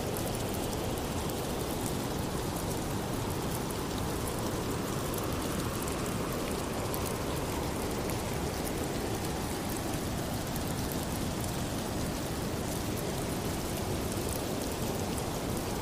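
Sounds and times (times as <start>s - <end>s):
rain falling: 0.0s - 15.8s.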